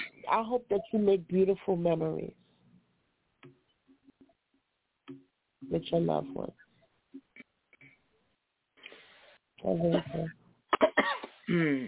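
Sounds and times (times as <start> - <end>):
speech: 0.3 - 2.4, 5.1 - 6.6, 9.6 - 11.8
faint breathy sounds: 8.8 - 9.4
person coughing in short harsh bursts: 9.9 - 11.8.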